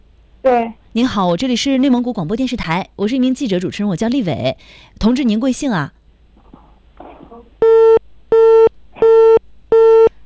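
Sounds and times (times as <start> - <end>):
speech: 0.4 - 6.0
faint murmur: 6.4 - 7.6
telephone busy signal electronic beeps: 7.6 - 10.1.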